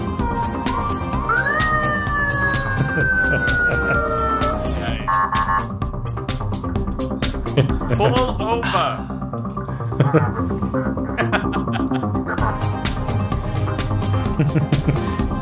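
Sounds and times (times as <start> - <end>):
busy steadily pulsing background: 0.0 - 15.3
voice imitating a police siren: 1.3 - 5.7
laughter: 2.4 - 4.9, 7.5 - 8.4, 9.7 - 12.6, 14.0 - 15.2
speech: 3.0 - 3.5, 7.6 - 9.0, 10.1 - 10.8.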